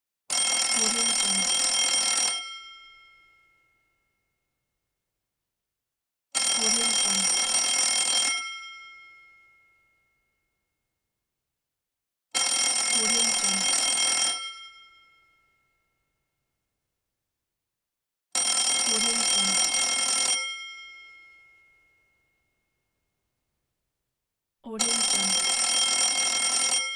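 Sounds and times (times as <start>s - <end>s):
telephone bell ringing: 0.3s - 4.0s, 6.4s - 10.2s, 12.4s - 16.0s, 18.4s - 22.4s, 24.8s - 26.9s.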